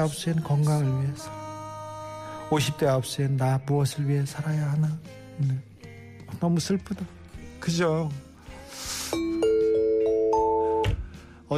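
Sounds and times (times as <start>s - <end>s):
speech: 0.0s - 1.5s, 2.5s - 5.7s, 6.3s - 8.9s
bright ding-dong-dang chime in rising steps: 9.2s - 10.9s.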